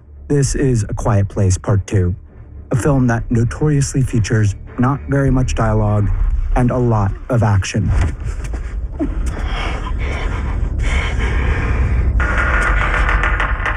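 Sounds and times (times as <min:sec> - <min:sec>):
tense orchestral film score: 0:00.0 - 0:13.6
speech: 0:00.3 - 0:09.7
heavy labored breathing with gasps and grunts: 0:08.2 - 0:12.4.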